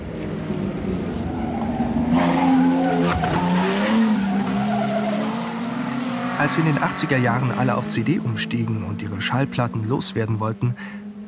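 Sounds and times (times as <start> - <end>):
Grand Prix motor race car engines roaring: 0.0 - 11.2
Grand Prix race car tyres skidding squeal: 1.1 - 8.2
speech: 6.5 - 11.0.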